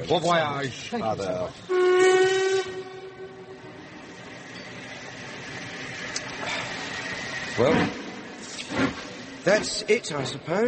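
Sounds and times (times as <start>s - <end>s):
speech: 0.0s - 2.0s, 7.6s - 8.0s, 8.7s - 10.6s
moving train rumbling and clattering: 0.0s - 10.6s
train whistle blast: 1.7s - 3.8s.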